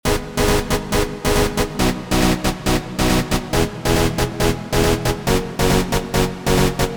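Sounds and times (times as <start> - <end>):
trance synth lead: 0.0 - 6.9.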